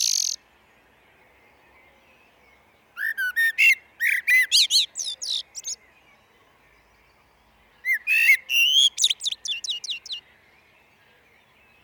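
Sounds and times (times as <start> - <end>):
common blackbird warbling and chirping in a glen: 0.0 - 0.4, 3.0 - 5.8, 7.8 - 10.2.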